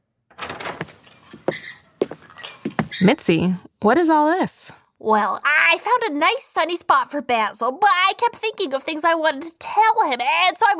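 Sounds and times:
door being opened with scraping and rattling: 0.3 - 3.1
speech: 3.0 - 10.7.

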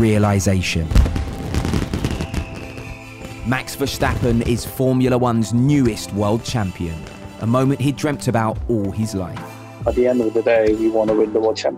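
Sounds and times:
speech: 0.0 - 2.0, 3.5 - 11.7
fireworks bursting in the night sky: 0.9 - 5.2
fireworks crackling: 0.9 - 7.8.

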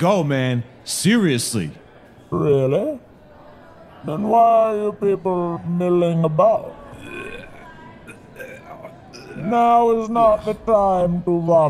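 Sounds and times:
speech: 0.0 - 3.0, 4.0 - 7.2, 9.4 - 11.6
gurgling burp after drinking Jägermeister: 6.9 - 9.6.

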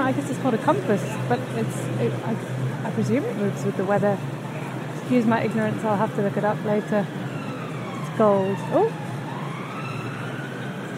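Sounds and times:
dense traffic noise in a London street: 0.0 - 10.9
speech: 0.1 - 4.5, 5.1 - 7.3, 8.2 - 9.0
emergency siren wailing in a London street near St Pancras: 5.4 - 10.9.

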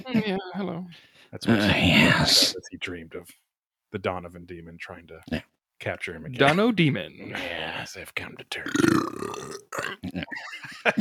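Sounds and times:
speech: 0.1 - 11.0
loud drawn-out croaky burp: 8.6 - 10.2.

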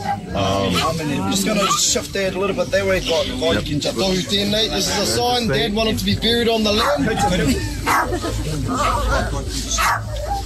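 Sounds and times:
dog barking in a grave hole: 0.0 - 1.8, 6.8 - 8.2, 8.8 - 10.4
murmured voices: 0.0 - 10.4
noise: 0.0 - 10.4
priest giving a eulogy during a burial: 0.3 - 9.9
speech: 0.4 - 10.3
laughter: 3.5 - 9.8.

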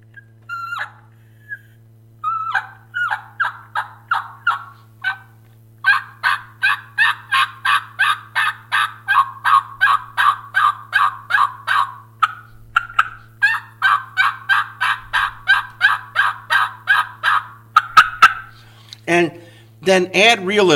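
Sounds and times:
mouth call imitating turkey yelps: 0.0 - 18.8
low steady hum: 0.0 - 20.7
speech: 19.9 - 20.7.

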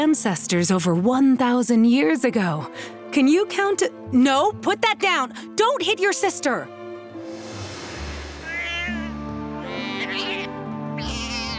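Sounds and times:
speech: 0.0 - 6.8
cat meowing in distress: 8.5 - 11.5.

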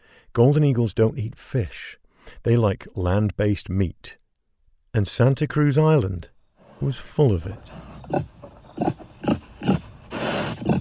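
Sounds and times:
speech: 0.3 - 4.2, 5.0 - 9.4
feral pig grunting on Santa Cruz Island in the Channel Islands: 6.6 - 10.7
feral pig raspy breathy snuffle: 6.6 - 10.7.

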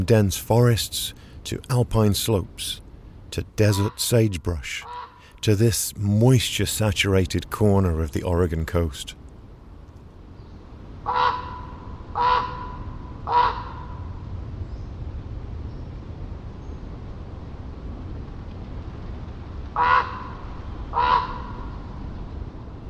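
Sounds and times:
speech: 0.0 - 9.2
low steady hum: 0.0 - 22.8
raven croaking: 3.6 - 5.5, 11.0 - 14.1, 19.7 - 22.0.

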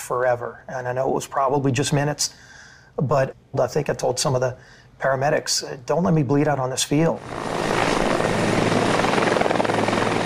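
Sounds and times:
speech: 0.1 - 7.7
helicopter engine whining: 7.2 - 10.2.

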